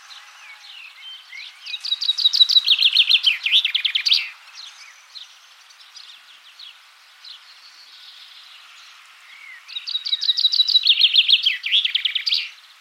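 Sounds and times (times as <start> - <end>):
common chaffinch Fringilla coelebs song: 0.0 - 12.7.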